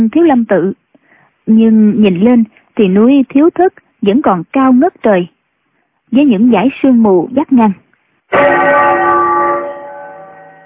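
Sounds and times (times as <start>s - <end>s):
speech: 0.0s - 0.8s, 1.5s - 5.4s, 6.1s - 8.8s
deep temple bell strike from a monastery below a mountain, carried on the wind: 8.3s - 10.6s.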